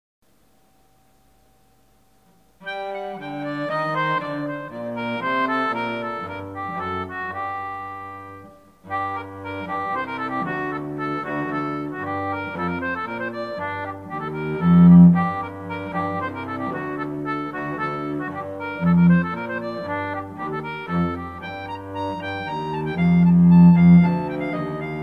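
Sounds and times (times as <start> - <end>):
concertina playing a hornpipe: 2.6 - 25.0.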